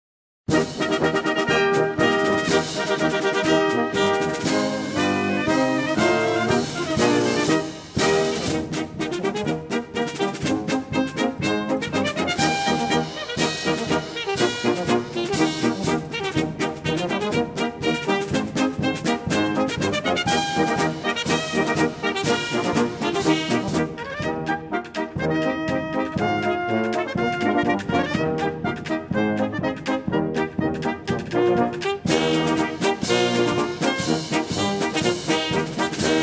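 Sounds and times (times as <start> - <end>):
bugle: 0.5 - 36.2
drum: 0.5 - 36.2.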